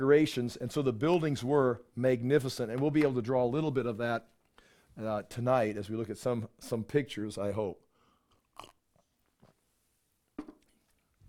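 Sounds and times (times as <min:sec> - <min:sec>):
speech: 0:00.0 - 0:04.4, 0:05.0 - 0:07.8, 0:08.6 - 0:08.8
speaker sipping water at a microphone: 0:08.3 - 0:08.8.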